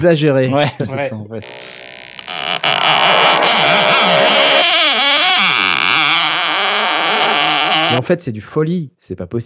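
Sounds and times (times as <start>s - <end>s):
speech: 0.0s - 1.7s, 7.9s - 9.4s
wooden door creaking open slowly: 1.4s - 8.0s.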